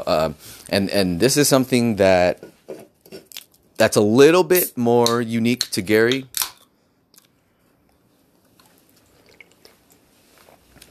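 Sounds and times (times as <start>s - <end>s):
speech: 0.1s - 2.5s, 3.8s - 6.3s
person sipping juice: 8.6s - 10.8s.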